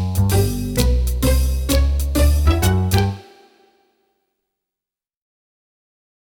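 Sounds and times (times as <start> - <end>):
comedy style music: 0.1 - 3.7.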